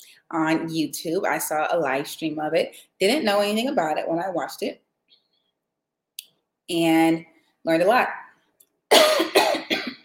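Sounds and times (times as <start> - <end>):
speech: 0.3 - 4.8, 6.7 - 8.2
harsh coughs: 8.9 - 10.0.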